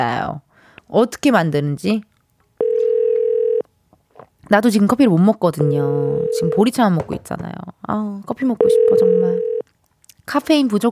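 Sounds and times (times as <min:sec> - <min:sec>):
speech: 0:00.0 - 0:02.1, 0:04.5 - 0:09.5, 0:10.3 - 0:10.9
telephone dial tone while placing a call: 0:02.6 - 0:03.6, 0:08.6 - 0:09.6.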